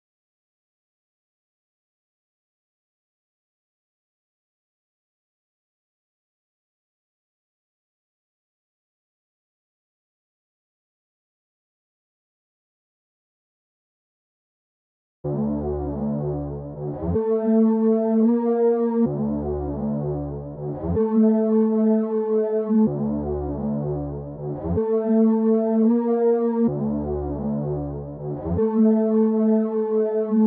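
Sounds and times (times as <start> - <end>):
D minor filtered bass loop: 15.3 - 30.4.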